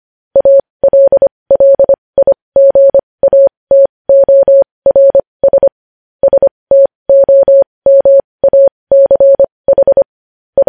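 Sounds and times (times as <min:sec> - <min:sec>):
Morse code beeps of a steady medium-pitch tone: 0:00.4 - 0:10.6.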